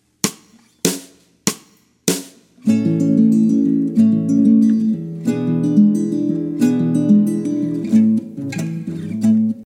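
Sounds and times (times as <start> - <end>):
two guitars playing a milonga: 2.6 - 9.6.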